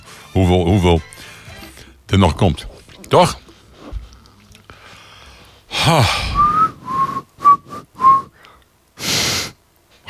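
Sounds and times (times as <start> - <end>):
speech: 0.4 - 1.1, 2.1 - 3.4, 5.8 - 6.3
breathy sigh: 4.1 - 7.2
person whistling: 6.1 - 8.4.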